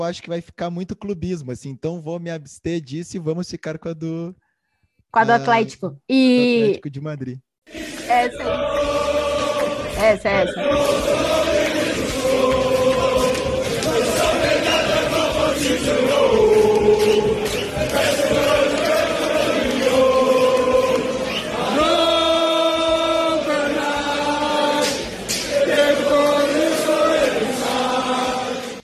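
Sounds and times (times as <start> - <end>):
speech: 0.0 - 4.4, 5.1 - 7.5, 8.1 - 9.2, 10.0 - 12.6
football supporters chanting in unison: 7.7 - 28.8.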